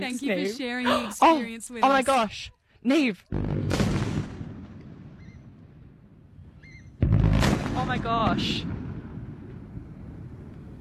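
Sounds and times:
speech: 0.0 - 3.9, 7.9 - 8.8
demolition blast of power station chimney: 3.3 - 10.7.

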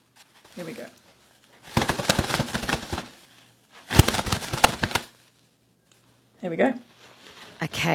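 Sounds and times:
speech: 0.6 - 1.1, 6.4 - 6.9, 7.6 - 7.9
rapid crackly fluttering imitating bird wings flapping: 1.6 - 3.2, 3.8 - 5.2.

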